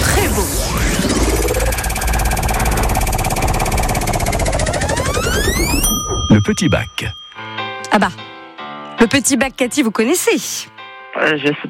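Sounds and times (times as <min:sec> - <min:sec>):
tones rising in pitch: 0:00.0 - 0:06.4
prize wheel spinning and clicking on a game show: 0:02.0 - 0:06.8
speech: 0:06.4 - 0:07.2, 0:07.9 - 0:08.2, 0:09.0 - 0:11.6.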